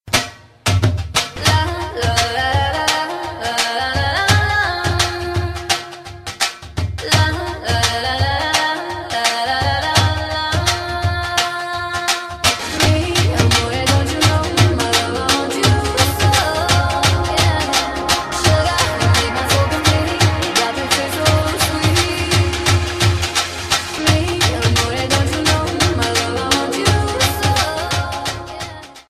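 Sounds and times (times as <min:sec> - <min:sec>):
dhol drum ringtone: 0:00.1 - 0:29.0
English song: 0:12.6 - 0:29.0.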